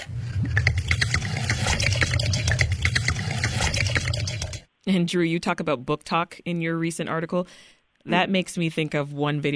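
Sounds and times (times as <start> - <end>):
vodka glugging from a bottle poured for a cocktail: 0.0 - 4.7
speech: 4.8 - 9.5.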